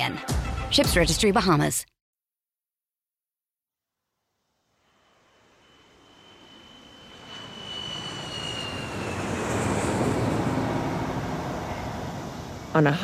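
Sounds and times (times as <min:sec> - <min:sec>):
speech: 0:00.0 - 0:01.9, 0:12.8 - 0:13.0
airplane engine roaring: 0:04.9 - 0:13.0.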